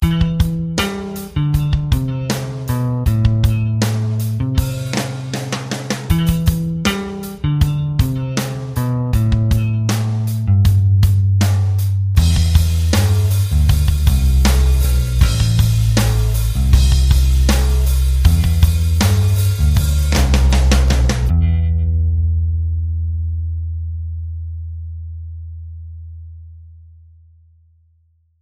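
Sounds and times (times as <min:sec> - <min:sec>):
drums: 0:00.0 - 0:21.3
bass: 0:00.0 - 0:28.4.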